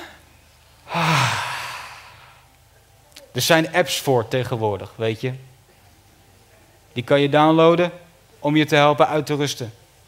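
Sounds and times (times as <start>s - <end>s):
deep breath let out as a long sigh during a group relaxation exercise: 0.9s - 2.4s
speech: 3.4s - 5.5s, 7.0s - 9.8s.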